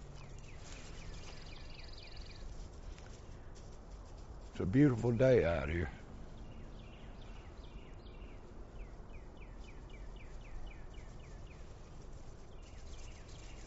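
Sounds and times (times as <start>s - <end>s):
birds singing and chirping outdoors: 0.0s - 2.6s, 4.7s - 11.8s, 12.4s - 13.6s
speech: 4.6s - 6.0s.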